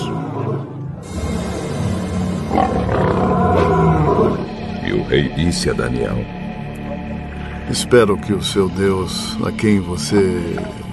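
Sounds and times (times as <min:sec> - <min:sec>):
lions roaring and growling: 0:00.0 - 0:04.7
speech: 0:05.1 - 0:06.4, 0:07.7 - 0:10.8.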